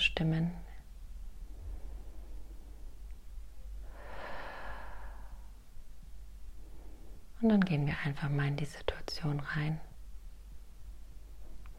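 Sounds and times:
faint hissing background: 0:00.0 - 0:11.7
speech: 0:00.2 - 0:00.7, 0:07.4 - 0:09.9
slow deliberate breath drawn in: 0:01.4 - 0:03.0, 0:03.7 - 0:05.8, 0:06.4 - 0:07.3.

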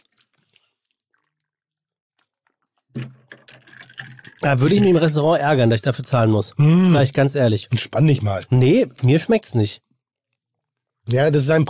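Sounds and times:
pen stirring and tapping inside a glass of water with mango juice: 0:02.5 - 0:05.1
speech: 0:04.4 - 0:09.8, 0:11.1 - 0:11.6.

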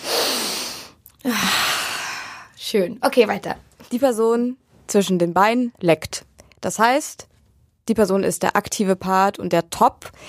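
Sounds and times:
long airy exhale: 0:00.0 - 0:02.6
long deep inhale through the nose: 0:00.0 - 0:02.6
speech: 0:01.2 - 0:01.6, 0:02.7 - 0:07.3, 0:07.9 - 0:10.2.

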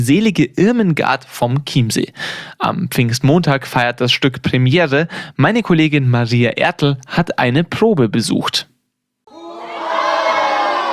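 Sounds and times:
speech: 0:00.0 - 0:08.7
crowd cheering and shouting a welcome at a theatre rehearsal on the Fraueninsel in the Chiemsee: 0:09.3 - 0:10.9.

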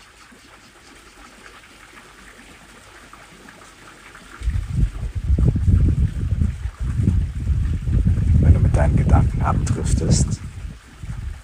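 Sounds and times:
gusty wind buffeting the microphone: 0:04.4 - 0:11.4
speech: 0:09.4 - 0:10.4.

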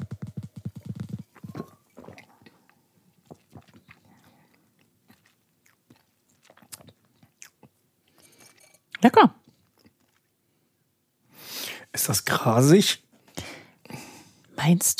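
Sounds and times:
faint mouth smacks and clicks: 0:00.0 - 0:07.8
person gulping a sip of malty beer during a tasting: 0:00.0 - 0:07.9
speech: 0:09.0 - 0:09.4, 0:12.0 - 0:13.0, 0:14.6 - 0:14.9.

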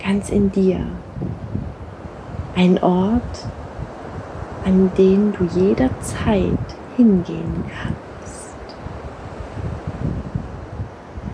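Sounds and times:
sea surf with low rumbling hiss: 0:00.0 - 0:11.3
speech: 0:00.1 - 0:01.5, 0:02.6 - 0:03.6, 0:04.6 - 0:08.0.

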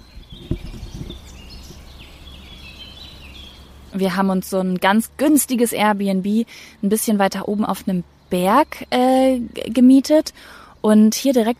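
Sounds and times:
birds chirping and tweeting outdoors: 0:00.0 - 0:11.5
brief dull thumps: 0:00.2 - 0:01.8
speech: 0:04.0 - 0:11.5.

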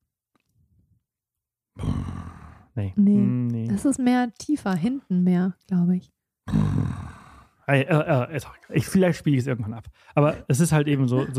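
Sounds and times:
speech: 0:02.8 - 0:07.0, 0:07.7 - 0:11.3
person's voice imitating the low gurgling rumble of a herd: 0:06.5 - 0:07.4.

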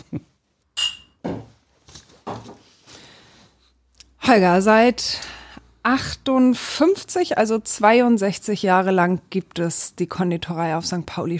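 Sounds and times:
glasses clinking in a toast: 0:00.8 - 0:01.3
speech: 0:04.3 - 0:11.3.

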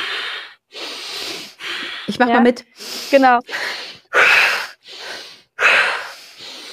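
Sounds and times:
deep breathing in and out: 0:00.0 - 0:06.7
speech: 0:02.1 - 0:03.7.

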